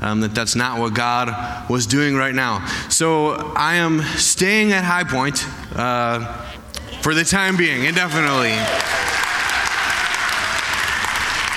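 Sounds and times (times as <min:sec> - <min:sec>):
speech: 0:00.0 - 0:09.2
audience applause: 0:06.8 - 0:11.5.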